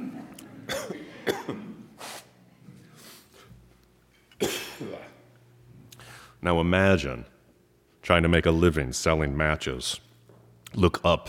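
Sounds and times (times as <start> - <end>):
harsh coughing: 0.7 - 1.9, 4.4 - 5.2
sharp intake of breath: 2.0 - 2.4, 6.0 - 6.4
speech: 6.4 - 7.3, 8.0 - 10.1, 10.7 - 11.2.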